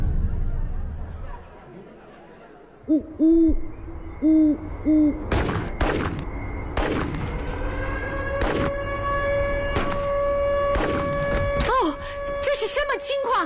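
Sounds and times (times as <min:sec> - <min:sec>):
laughter: 0:01.1 - 0:03.2
speech: 0:02.9 - 0:06.1
steady wailing alarm tone: 0:03.0 - 0:13.4.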